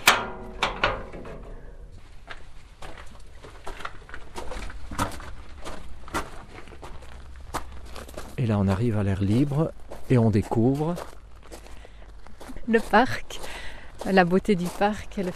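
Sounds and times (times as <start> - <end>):
door clunking open with a creaking rattle: 0.0 - 2.0
steady footsteps: 0.0 - 15.3
speech: 8.4 - 11.2, 12.7 - 13.3, 14.0 - 15.3.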